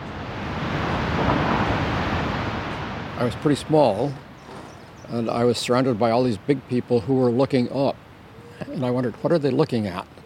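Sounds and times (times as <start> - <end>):
waterfall thundering over a cliff: 0.0 - 7.1
speech: 3.2 - 4.2, 5.1 - 10.2.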